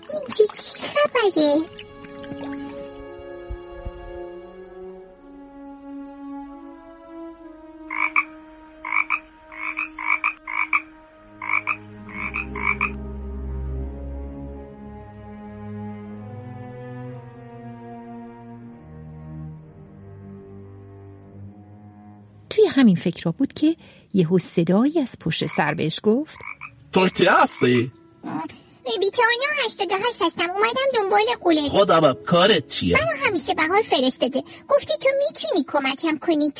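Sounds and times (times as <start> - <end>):
soft sustained music: 0.0 - 36.5
speech: 0.1 - 1.8, 23.0 - 36.5
frogs croaking raspily: 1.6 - 3.0, 7.6 - 13.7, 25.3 - 28.6.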